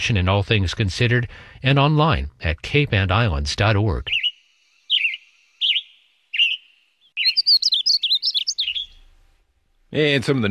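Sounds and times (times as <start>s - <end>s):
speech: 0.0s - 4.2s, 9.9s - 10.5s
western tanager singing: 4.0s - 9.1s.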